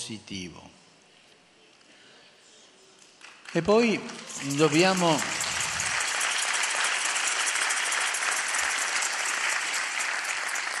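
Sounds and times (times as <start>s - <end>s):
speech: 0.0s - 0.8s, 3.5s - 5.4s
audience applause with many hands clapping: 3.2s - 10.7s.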